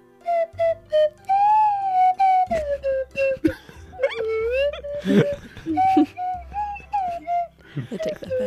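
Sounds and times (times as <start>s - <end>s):
slide whistle swooping: 0.2s - 3.4s, 4.0s - 8.4s
laughter: 3.4s - 8.4s.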